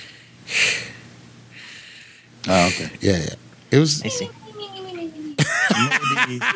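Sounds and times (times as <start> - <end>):
person imitating heavy respirator-style breathing: 0.0 - 3.0
speech: 2.5 - 4.4, 5.8 - 6.5
laughter: 5.4 - 6.5.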